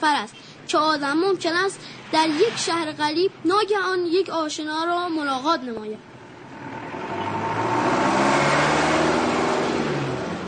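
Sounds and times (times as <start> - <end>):
speech: 0.0 - 6.1
car engine revving: 6.2 - 10.4.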